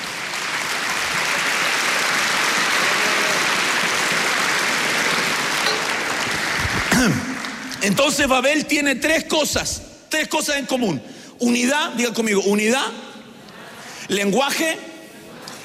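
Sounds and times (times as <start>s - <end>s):
audience applauding steadily and loudly: 0.0s - 8.3s
speech: 7.0s - 13.0s, 14.1s - 14.9s.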